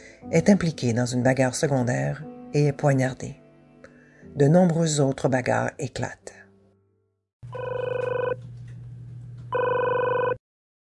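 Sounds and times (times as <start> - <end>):
speech: 0.2 - 3.4, 4.4 - 6.4, 7.5 - 7.9
telephone ringing with electronic trill: 7.5 - 8.4, 9.5 - 10.4.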